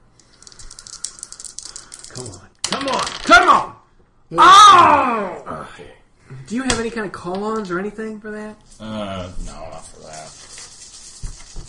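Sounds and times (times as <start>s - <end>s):
dice rattling and clattering across a hard surface in a game: 0.2s - 3.4s, 10.0s - 11.6s
speech: 4.3s - 10.4s.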